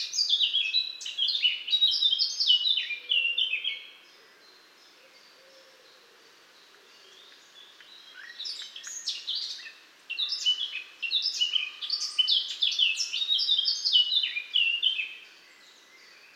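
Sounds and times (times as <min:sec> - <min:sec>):
Eurasian blackcap Sylvia atricapilla warbling song: 0:00.0 - 0:16.3.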